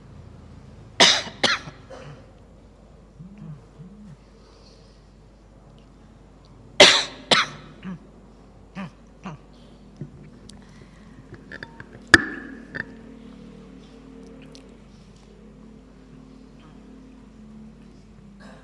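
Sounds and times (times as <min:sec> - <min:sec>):
person coughing: 0:01.0 - 0:02.3, 0:06.8 - 0:08.0, 0:18.4 - 0:18.6.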